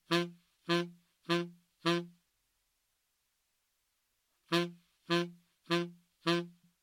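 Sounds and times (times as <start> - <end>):
saxophone playing upbeat and downbeat example: 0.0 - 2.2, 4.5 - 6.6.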